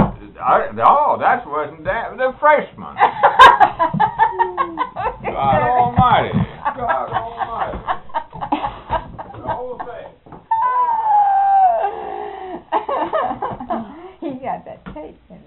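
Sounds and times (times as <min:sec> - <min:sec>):
speech: 0:00.4 - 0:06.4
laughter: 0:02.9 - 0:14.0
dog howling: 0:10.5 - 0:12.0.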